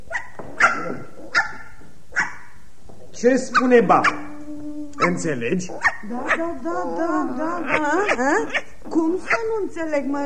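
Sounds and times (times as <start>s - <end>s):
puppy giving short high-pitched barks: 0.1s - 2.6s, 3.4s - 4.4s, 5.0s - 6.5s, 7.6s - 9.6s
speech: 3.2s - 4.2s, 5.0s - 10.2s.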